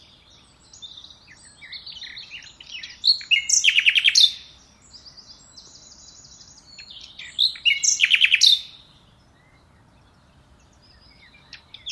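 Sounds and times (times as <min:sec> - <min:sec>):
common nightingale Luscinia megarhynchos singing: 0:00.0 - 0:11.8.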